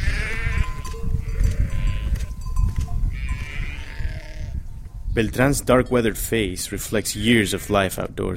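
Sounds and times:
flock of sheep bleating: 0:00.0 - 0:04.6
speech: 0:05.2 - 0:08.3.

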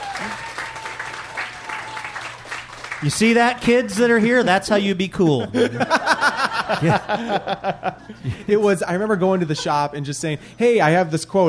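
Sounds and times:
audience applause: 0:00.0 - 0:03.7
speech: 0:03.0 - 0:11.4
laughter: 0:05.2 - 0:10.2.

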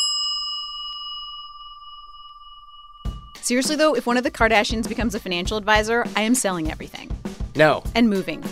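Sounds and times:
bright metallic bell ringing: 0:00.0 - 0:04.8
speech: 0:03.4 - 0:08.5.

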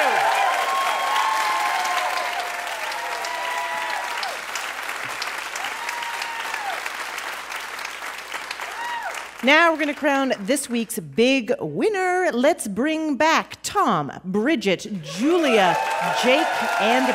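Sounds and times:
audience whoops and cheers: 0:00.0 - 0:04.5, 0:05.5 - 0:07.0, 0:08.6 - 0:09.3, 0:15.1 - 0:17.1
sizable crowd applauding: 0:00.0 - 0:10.0, 0:15.0 - 0:17.1
speech: 0:09.4 - 0:17.1.

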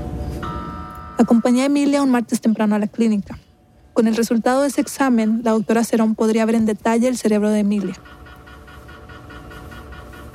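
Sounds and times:
MRI scanner running a brain scan: 0:00.0 - 0:10.3
constant droning hum of an MRI scanner: 0:00.0 - 0:10.3
speech: 0:01.2 - 0:03.4, 0:04.0 - 0:08.2.

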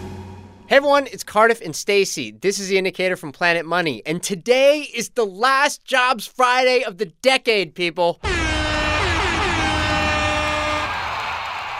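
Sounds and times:
speech: 0:00.7 - 0:08.4
air horn blast: 0:08.2 - 0:11.3.

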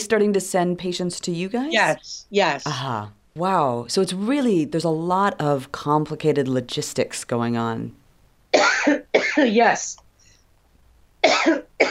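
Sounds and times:
speech: 0:00.1 - 0:10.0, 0:11.2 - 0:11.8
dry raspy cough: 0:08.5 - 0:09.5, 0:11.2 - 0:11.8.

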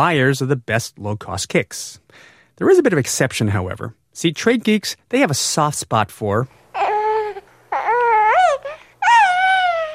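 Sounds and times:
speech: 0:00.0 - 0:06.6
baby crying: 0:06.7 - 0:09.9.

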